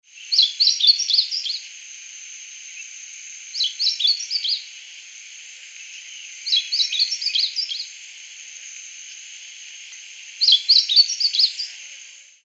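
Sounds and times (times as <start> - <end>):
Amaurospiza moesta: 0.2 - 1.7, 3.6 - 4.7, 5.9 - 7.9, 10.4 - 11.9.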